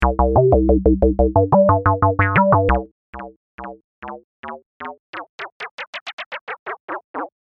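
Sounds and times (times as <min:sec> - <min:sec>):
dub delay echoes: 0:00.0 - 0:02.8.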